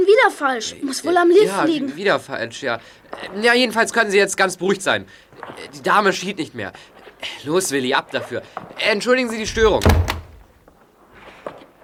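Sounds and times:
speech: 0:00.0 - 0:10.2
person stumbling and falling against a door: 0:09.5 - 0:10.6.

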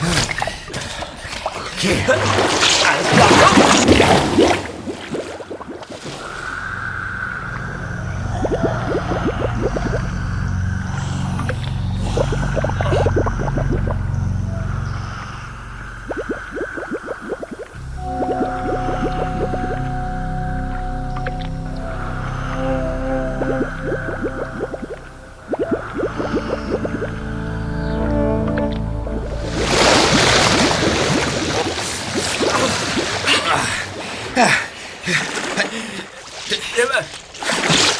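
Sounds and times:
rush of water as divers break the surface: 0:00.0 - 0:27.7, 0:28.6 - 0:37.9
underwater bubbling and gurgling of divers swimming up: 0:00.0 - 0:35.5
speech: 0:01.8 - 0:04.7
low droning hum: 0:06.2 - 0:31.6.

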